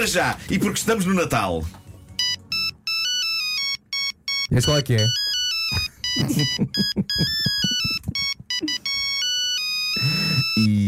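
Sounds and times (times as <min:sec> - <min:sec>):
speech: 0:00.0 - 0:01.8, 0:04.5 - 0:07.9, 0:10.6 - 0:10.8
classic mobile phone ringtone with beeping monophonic notes: 0:02.0 - 0:10.7
laughter: 0:06.2 - 0:08.8.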